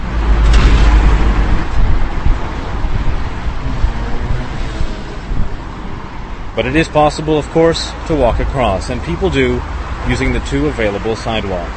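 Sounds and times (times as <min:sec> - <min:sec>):
wind buffeting the microphone: 0:00.0 - 0:10.6
busy road traffic roaring across a six-lane bridge: 0:00.0 - 0:11.7
speech: 0:06.6 - 0:11.7.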